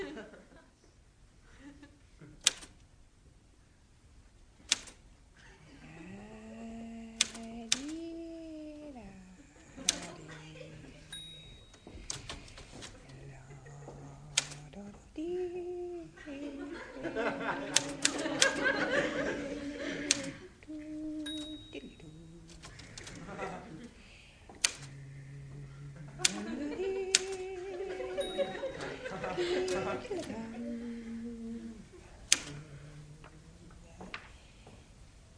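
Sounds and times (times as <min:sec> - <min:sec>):
typewriter key strikes: 0:02.4 - 0:02.8, 0:04.7 - 0:05.0, 0:07.2 - 0:08.0, 0:11.2 - 0:13.0, 0:14.3 - 0:14.6, 0:17.7 - 0:18.6, 0:24.6 - 0:24.9
person chuckling: 0:05.4 - 0:11.2, 0:12.9 - 0:24.0, 0:24.7 - 0:33.6
person humming: 0:05.5 - 0:24.0, 0:24.6 - 0:34.1.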